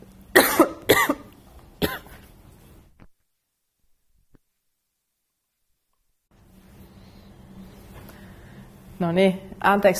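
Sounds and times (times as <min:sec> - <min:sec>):
low room noise: 0:00.0 - 0:09.9
dry coughs: 0:00.4 - 0:02.3
speech: 0:09.0 - 0:09.9.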